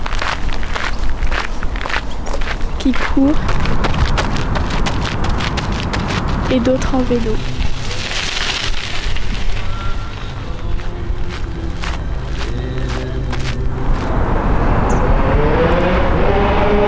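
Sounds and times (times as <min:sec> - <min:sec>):
scattered crackles: 0:00.0 - 0:14.2
faint footsteps: 0:00.0 - 0:14.6
distant road traffic across a river: 0:00.0 - 0:16.8
speech: 0:02.8 - 0:04.0, 0:06.5 - 0:07.6.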